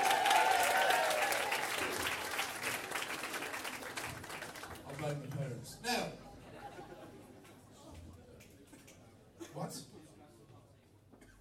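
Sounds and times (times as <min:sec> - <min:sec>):
crowd applause: 0:00.0 - 0:05.3
speech: 0:05.1 - 0:06.1, 0:09.6 - 0:09.9
laughter: 0:06.3 - 0:07.7.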